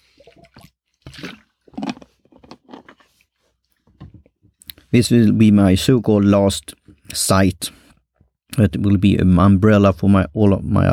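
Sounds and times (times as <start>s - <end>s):
person slurping and swallowing a drink: 0.0s - 3.4s
speech: 4.9s - 7.8s, 8.6s - 10.9s.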